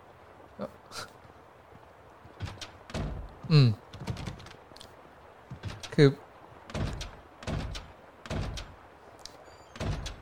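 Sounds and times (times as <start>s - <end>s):
speech: 0.6s - 1.1s, 3.5s - 3.8s, 6.0s - 6.2s
video game door slamming: 2.4s - 3.3s, 6.7s - 8.8s, 9.7s - 10.2s.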